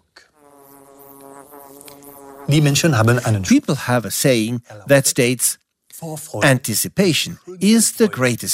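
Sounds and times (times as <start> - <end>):
bees buzzing around a hollow tree: 0.4 - 3.2
speech: 2.5 - 8.5.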